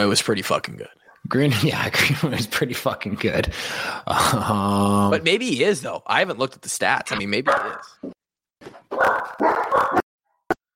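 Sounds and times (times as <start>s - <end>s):
speech: 0.0s - 8.0s
dogs barking: 7.5s - 8.1s, 8.9s - 10.0s
dog yelping: 8.9s - 10.0s.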